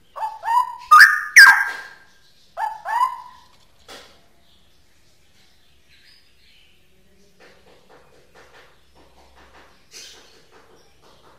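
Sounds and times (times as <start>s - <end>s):
straw-headed bulbul singing gurgling whistled notes: 0.2s - 2.0s.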